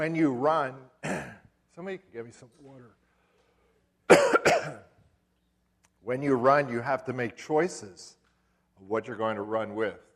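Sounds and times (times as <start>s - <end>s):
speech: 0.0s - 1.2s, 1.8s - 3.0s, 6.0s - 8.2s, 8.8s - 10.1s
rough coughing with a communion wafer stuck in the throat: 1.0s - 1.5s, 4.1s - 5.0s.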